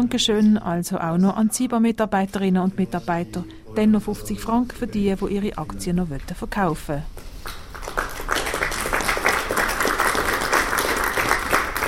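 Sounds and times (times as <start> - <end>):
speech: 0.0 - 7.6
thin applause from a small shareholders' meeting: 7.4 - 11.8.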